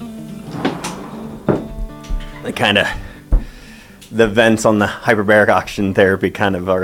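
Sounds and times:
door pushed shut with solid thuds: 0.3s - 3.6s
wood and latch rattling: 0.3s - 3.6s
speech: 2.4s - 3.1s, 4.1s - 6.8s.

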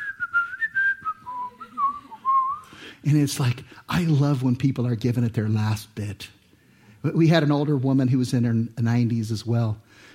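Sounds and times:
woman whistling a wavering melody during a worship service: 0.0s - 2.7s
speech: 3.0s - 6.4s, 7.0s - 10.1s.

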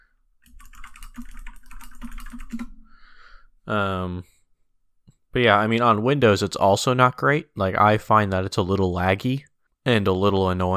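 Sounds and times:
clacky keystrokes on a mechanical computer keyboard: 0.4s - 2.8s
speech: 3.7s - 4.3s, 5.3s - 10.7s
short loud burst of person's voice: 5.4s - 10.7s.

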